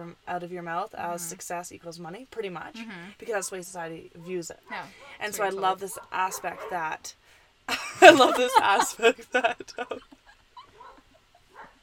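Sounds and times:
speech: 0.0s - 10.2s
dog giving brief sharp barks: 6.0s - 6.9s, 10.7s - 11.8s
laughter: 7.7s - 10.9s.

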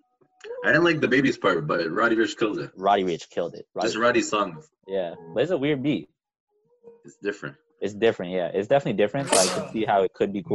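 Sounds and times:
casual conversation: 0.4s - 6.0s, 7.0s - 10.5s
speech: 0.6s - 6.1s, 7.0s - 10.5s
person sneezing: 9.2s - 9.9s.

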